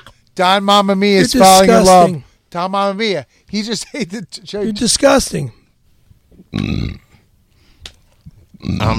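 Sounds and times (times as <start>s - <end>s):
speech: 0.4s - 5.6s, 6.4s - 7.0s, 8.6s - 8.9s
loud rough belch: 6.5s - 7.2s, 8.6s - 8.9s.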